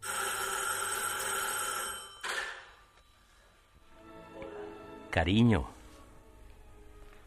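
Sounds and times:
telephone bell ringing: 0:00.0 - 0:03.2
speech: 0:05.2 - 0:05.8.

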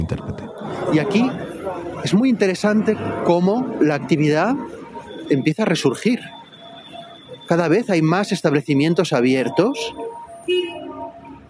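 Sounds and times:
speech: 0:00.0 - 0:06.4, 0:07.5 - 0:10.8
street traffic hum: 0:00.0 - 0:11.4
car horn honk: 0:10.0 - 0:11.1.

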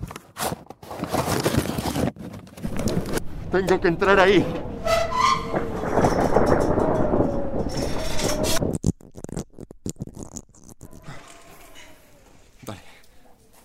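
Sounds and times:
knocks and crackles: 0:01.0 - 0:12.6
heavy storm wind roaring: 0:02.6 - 0:08.9
speech: 0:03.5 - 0:04.7.

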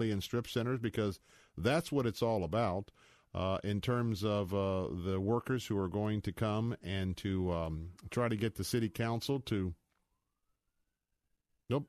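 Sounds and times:
speech: 0:00.0 - 0:09.8, 0:11.7 - 0:11.8
emergency vehicle siren wailing: 0:07.4 - 0:11.4.

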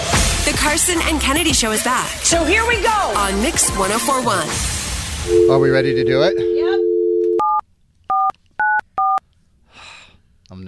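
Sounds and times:
speech: 0:00.6 - 0:06.7, 0:10.5 - 0:10.6
touch-tone phone dialing beeps: 0:05.3 - 0:09.2.

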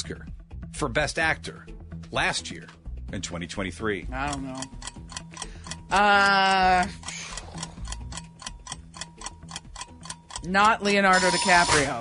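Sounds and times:
speech: 0:00.1 - 0:04.9, 0:05.9 - 0:07.2, 0:10.4 - 0:11.9
quiz timer ticking: 0:03.2 - 0:11.9.

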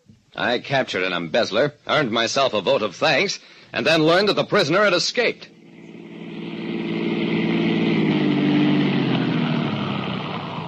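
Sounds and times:
speech: 0:00.4 - 0:05.5
police car engine idling as it stops: 0:05.5 - 0:10.6.

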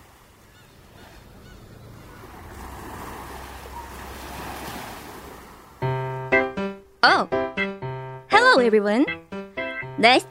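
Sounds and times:
steady surf at a beach: 0:00.0 - 0:07.0
wind at a beach: 0:00.0 - 0:07.0
speech: 0:07.1 - 0:07.4, 0:08.5 - 0:09.2, 0:10.0 - 0:10.2.

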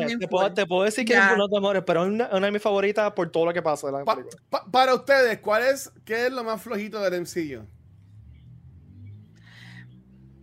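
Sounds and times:
speech: 0:00.0 - 0:07.8
low steady rumble of street traffic: 0:04.4 - 0:10.4
car swishing past on the street: 0:07.8 - 0:10.4.

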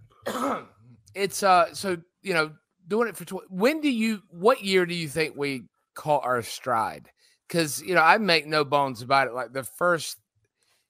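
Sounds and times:
person coughing and clearing their throat: 0:00.2 - 0:00.8
speech: 0:00.2 - 0:10.2.

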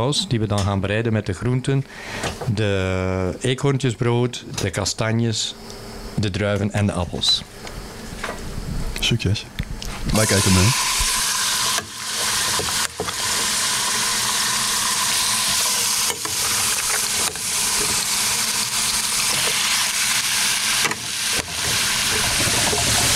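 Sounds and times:
speech: 0:00.0 - 0:07.8, 0:09.1 - 0:10.9
meat searing in two large roasting pans: 0:10.2 - 0:23.1.

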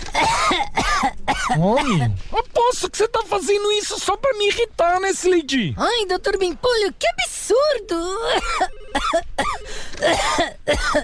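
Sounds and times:
loud raspy hacking coughs: 0:00.1 - 0:02.2, 0:08.3 - 0:11.0
speech: 0:01.6 - 0:11.0.

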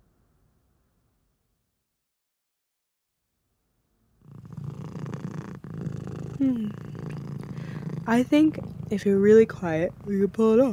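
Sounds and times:
cat purring: 0:04.2 - 0:10.7
speech: 0:06.4 - 0:06.9, 0:08.1 - 0:10.7.

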